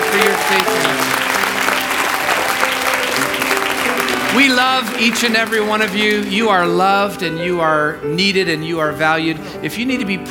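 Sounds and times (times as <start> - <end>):
church congregation applauding with hand claps: 0.0 - 6.8
speech: 0.1 - 1.2, 4.4 - 10.2.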